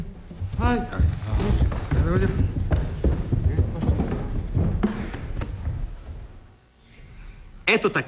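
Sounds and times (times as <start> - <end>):
horse hooves clip-clopping in a walking rhythm: 0.0 - 6.5
speech: 0.6 - 1.4, 7.7 - 8.0.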